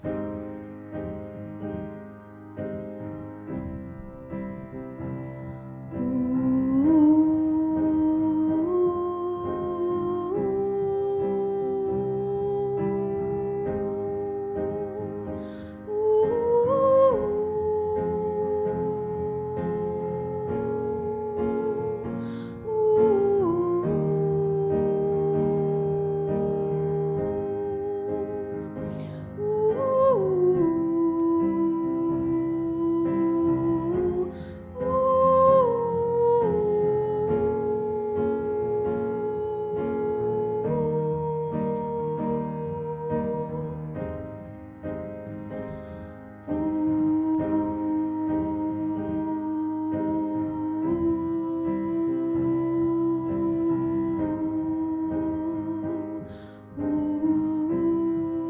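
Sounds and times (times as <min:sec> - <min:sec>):
soprano voice: 0:00.0 - 0:58.4.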